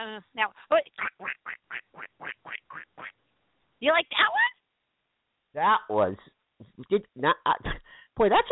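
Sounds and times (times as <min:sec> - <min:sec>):
speech: 0:00.2 - 0:01.2, 0:03.8 - 0:04.5, 0:05.6 - 0:08.5
person's voice imitating nasal duck quacks: 0:00.9 - 0:03.2.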